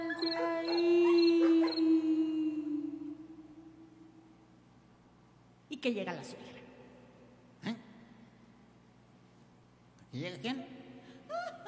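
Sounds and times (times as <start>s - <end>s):
dog yelping: 0.0s - 2.1s
dog howling at night: 0.0s - 3.2s
speech: 5.8s - 6.6s, 10.2s - 10.8s.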